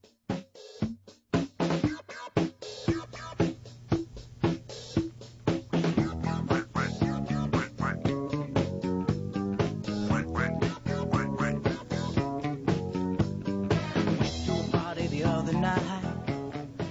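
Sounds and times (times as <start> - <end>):
upbeat disco track with a steady driving beat: 1.4 - 16.8
nasal raspy voice imitating a duck's quacking: 5.8 - 8.5, 9.9 - 12.5.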